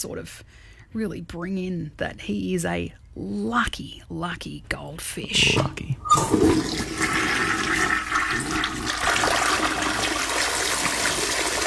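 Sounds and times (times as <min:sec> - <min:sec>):
speech: 0:00.0 - 0:08.0
toilet flushing: 0:06.0 - 0:11.6.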